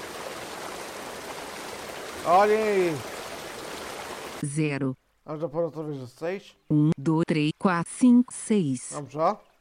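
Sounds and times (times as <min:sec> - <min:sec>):
waterfall roaring: 0:00.0 - 0:04.4
speech: 0:02.2 - 0:03.1, 0:04.4 - 0:09.5.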